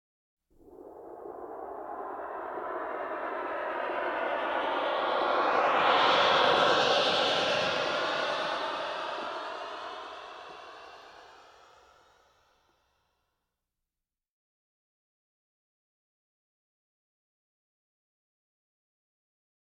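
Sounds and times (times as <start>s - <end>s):
large science fiction UFO spaceship flying past: 0.6s - 12.1s.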